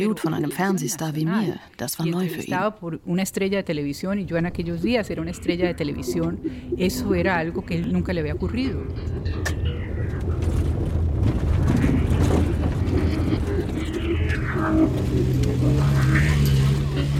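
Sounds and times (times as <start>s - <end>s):
speech: 0.0s - 9.7s
wind buffeting the microphone: 4.3s - 15.7s
red off-road vehicle engine rumbling while climbing a bare hill: 4.3s - 17.1s.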